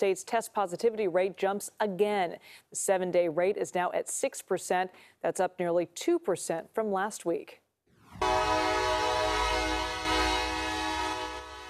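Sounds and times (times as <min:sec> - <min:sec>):
speech: 0:00.0 - 0:08.6
train horn blaring: 0:08.1 - 0:11.6.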